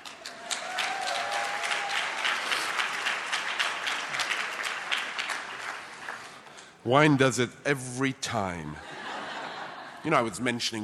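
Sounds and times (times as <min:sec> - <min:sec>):
audience applause: 0:00.0 - 0:06.4
speech: 0:06.8 - 0:08.9, 0:10.0 - 0:10.8
laughter: 0:08.8 - 0:10.4.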